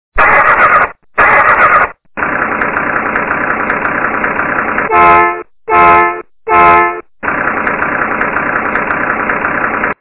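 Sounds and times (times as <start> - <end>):
diesel engine: 0.2 - 9.9.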